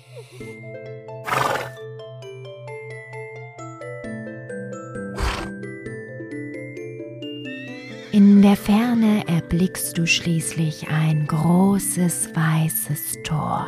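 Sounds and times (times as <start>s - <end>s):
speech: 0.2s - 1.2s, 8.1s - 13.6s
horse neighing and snorting: 1.2s - 1.8s, 5.2s - 5.6s.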